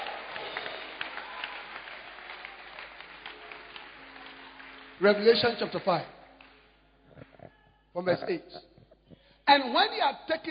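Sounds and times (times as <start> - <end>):
church congregation clapping hands: 0.0 - 8.1
speech: 5.0 - 6.2, 8.0 - 8.7, 9.5 - 10.4.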